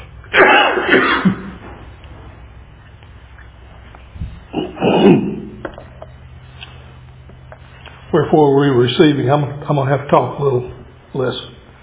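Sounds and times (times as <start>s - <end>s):
low hum: 0.0s - 11.8s
person coughing from a tickle in the throat: 0.4s - 1.5s, 4.5s - 5.6s
speech: 8.3s - 11.6s.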